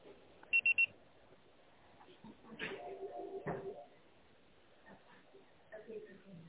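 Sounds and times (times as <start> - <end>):
voicemail beep signal of short high-pitched electronic tones: 0.5 - 0.9.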